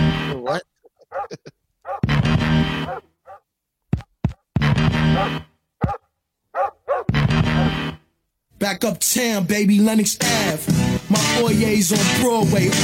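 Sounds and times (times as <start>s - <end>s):
speech: 0.5s - 1.6s, 8.6s - 12.8s
dog barking and snarling: 1.0s - 3.5s, 5.0s - 7.9s.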